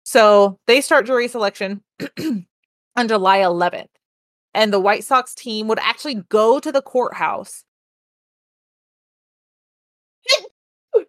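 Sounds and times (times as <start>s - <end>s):
speech: 0.1s - 7.7s
sneeze: 10.3s - 10.5s.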